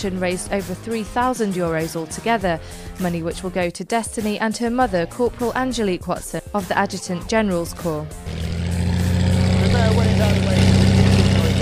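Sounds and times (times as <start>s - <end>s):
speech: 0.0s - 8.5s
light aircraft engine droning and revving: 9.2s - 11.6s.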